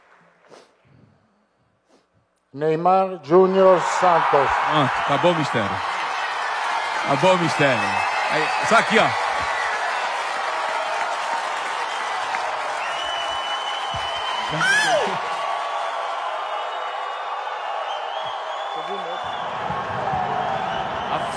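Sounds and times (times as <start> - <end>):
speech: 2.5 - 5.9, 7.0 - 9.2, 14.5 - 14.8
large auditorium audience cheering and shouting: 3.4 - 21.3
audience whistles: 7.6 - 10.1, 11.8 - 15.3, 16.2 - 21.3.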